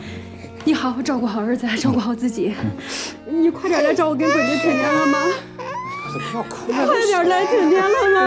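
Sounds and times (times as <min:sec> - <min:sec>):
people talking: 0:00.6 - 0:02.8, 0:03.3 - 0:05.4, 0:06.2 - 0:08.2
child crying and sobbing while parting from a parent: 0:03.6 - 0:08.2.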